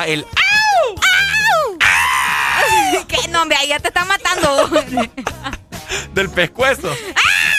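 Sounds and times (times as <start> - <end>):
speech: 0.0 - 0.4, 3.2 - 7.3
voice imitating a pop singer's high-pitched scream: 0.4 - 3.0, 7.2 - 7.5
laughter: 2.6 - 3.4, 4.2 - 5.8.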